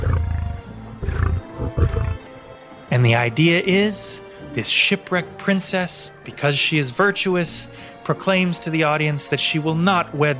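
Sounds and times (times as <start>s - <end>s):
800-pound male lion with a bushy mane roaring in a cage: 0.0s - 2.2s
speech: 3.0s - 10.3s.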